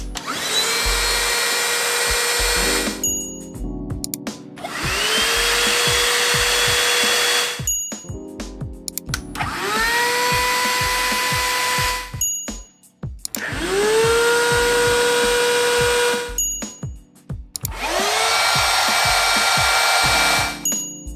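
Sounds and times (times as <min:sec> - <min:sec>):
cordless car vacuum cleaner motor roar during a noise test: 0:00.2 - 0:03.0, 0:04.6 - 0:07.7, 0:09.4 - 0:12.1, 0:13.4 - 0:16.4, 0:17.7 - 0:20.6.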